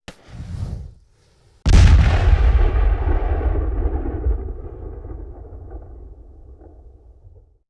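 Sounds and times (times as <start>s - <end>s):
light cannon firing in period combat: 1.7s - 7.5s.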